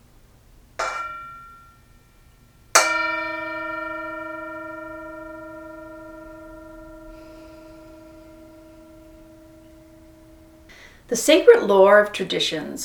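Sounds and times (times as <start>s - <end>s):
Tibetan singing bowl struck and ringing: 0.8s - 1.9s, 2.8s - 10.7s
speech: 11.1s - 12.8s.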